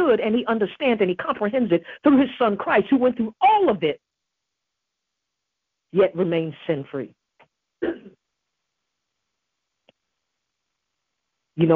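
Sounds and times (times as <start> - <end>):
speech: 0.1 - 4.0, 5.9 - 7.2, 7.8 - 8.2, 11.6 - 11.7
throat clearing: 7.8 - 8.2.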